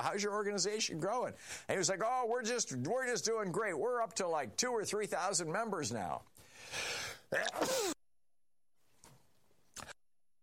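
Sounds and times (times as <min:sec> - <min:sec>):
speech: 0:00.0 - 0:07.9
breathy intake before a sneeze: 0:06.4 - 0:08.0
loud sneeze: 0:07.4 - 0:08.0.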